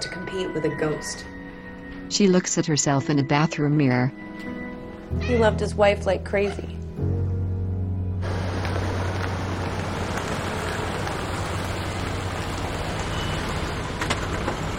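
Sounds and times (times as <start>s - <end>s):
speech: 0.4s - 1.4s, 2.1s - 6.7s
car engine humming low: 7.0s - 14.7s
steady loud broadband road hiss: 8.2s - 14.7s.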